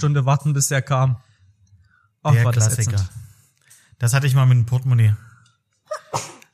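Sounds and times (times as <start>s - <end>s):
speech: 0.0s - 1.3s, 2.2s - 3.2s, 4.0s - 5.3s, 5.9s - 6.3s
person sneezing: 5.9s - 6.5s.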